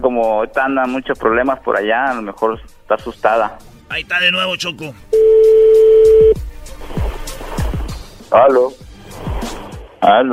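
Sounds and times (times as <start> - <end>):
speech: 0.2 - 6.5, 8.3 - 8.8, 10.0 - 10.3
telephone dial tone: 5.2 - 6.4.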